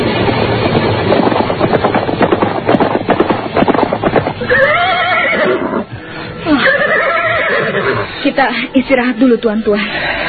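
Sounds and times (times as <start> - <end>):
horses mounted by soldiers galloping: 0.1 - 6.0
horse shrill wavering neigh: 4.4 - 8.1
speech: 8.4 - 10.2.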